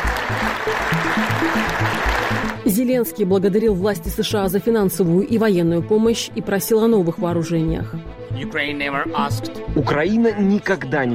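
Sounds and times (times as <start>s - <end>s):
applause from members of the US Congress during a speech: 0.0s - 2.6s
speech: 2.7s - 11.1s.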